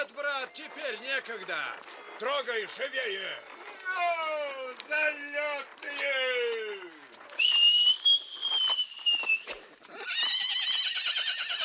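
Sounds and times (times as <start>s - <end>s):
speech: 0.5s - 6.3s
driver whistling to urge horses on: 7.4s - 9.5s
horse's trembling whinny: 9.9s - 11.6s.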